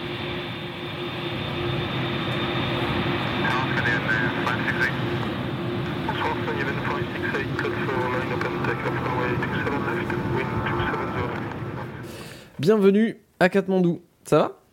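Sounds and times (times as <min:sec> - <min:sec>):
low hum: 0:00.0 - 0:12.2
airplane engine drone on a flight from Roissy to Kathmandu: 0:00.0 - 0:12.6
faint cabin chatter: 0:03.3 - 0:12.1
speech: 0:12.6 - 0:14.6.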